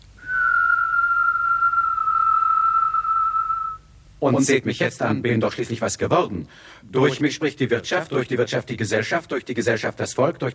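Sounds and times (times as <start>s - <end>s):
person whistling one long steady high note: 0.2s - 3.9s
speech: 4.2s - 10.5s.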